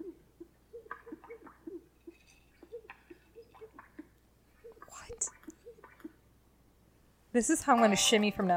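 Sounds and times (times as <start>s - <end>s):
male greater sage grouse courtship display pops and gulping notes: 0.4s - 1.8s, 2.6s - 6.2s
speech: 7.4s - 8.5s.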